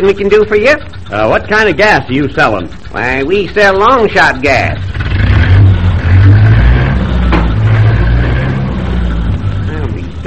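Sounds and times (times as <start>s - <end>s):
speech: 0.0s - 5.0s
car engine revving as car speeds away from a gas station: 2.3s - 10.2s.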